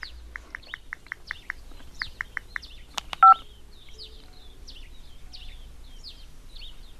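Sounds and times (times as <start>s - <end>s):
birds chirping and twittering: 0.0s - 6.9s
touch-tone beeps of a telephone number being dialled: 3.2s - 3.4s.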